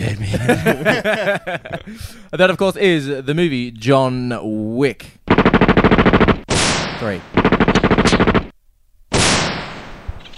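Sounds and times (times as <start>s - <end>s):
speech: 0.0s - 5.4s, 7.0s - 7.4s
laughter: 0.2s - 2.0s
rapid automatic gunfire burst sound effect: 5.3s - 8.5s
single loud gunshot blast sound effect: 9.1s - 10.1s.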